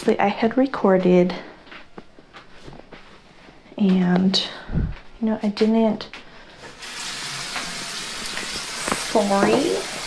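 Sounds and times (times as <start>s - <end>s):
speech: 0.0s - 1.5s, 3.8s - 6.2s, 9.2s - 9.9s
tap water running while a sink is rinsed out: 6.8s - 10.0s.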